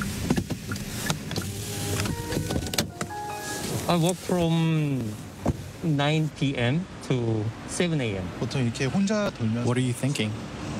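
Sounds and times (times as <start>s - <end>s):
delivery truck engine rumble in narrow alleys: 0.0s - 6.4s
speech: 3.9s - 5.2s, 5.8s - 10.5s.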